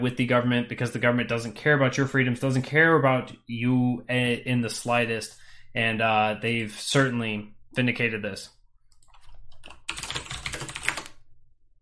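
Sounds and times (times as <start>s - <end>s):
speech: 0.0s - 8.6s
typing on a clacky computer keyboard: 9.0s - 11.2s.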